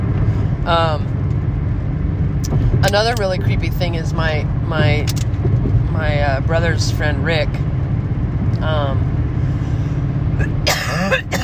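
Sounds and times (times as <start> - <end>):
steady low rumble: 0.0 - 10.7
speech: 0.7 - 1.2, 2.8 - 7.7, 8.6 - 9.1, 10.4 - 11.4
person coughing: 10.4 - 11.4.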